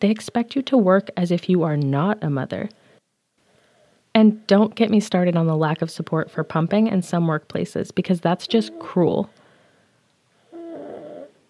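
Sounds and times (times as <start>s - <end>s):
speech: 0.0s - 2.8s, 4.2s - 9.4s
baby snoring softly: 10.4s - 11.4s.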